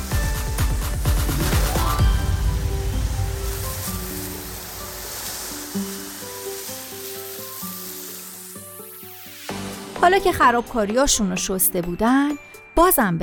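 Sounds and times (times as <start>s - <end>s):
pressurized water spraying from a fire truck: 0.8s - 11.0s
deep fire truck engine rumble: 1.1s - 5.7s
speech: 10.1s - 13.2s.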